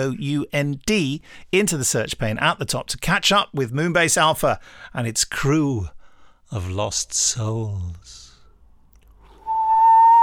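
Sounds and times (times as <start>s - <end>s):
speech: 0.0s - 8.2s
whistling: 9.2s - 10.2s.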